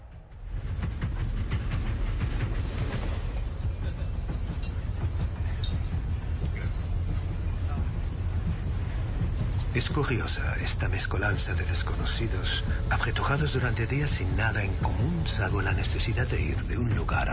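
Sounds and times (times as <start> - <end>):
train rolling along the rails heard from onboard: 0.0 - 17.3
speech: 9.8 - 17.3.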